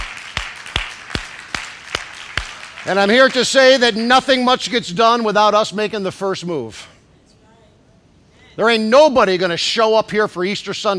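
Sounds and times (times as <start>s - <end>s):
group clapping in unison: 0.0s - 4.1s
speech: 2.8s - 7.0s, 8.6s - 10.9s.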